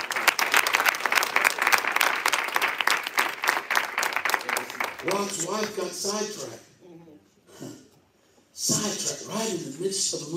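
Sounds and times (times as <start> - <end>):
audience applause: 0.0 - 5.8
speech: 5.0 - 6.7, 8.6 - 10.3.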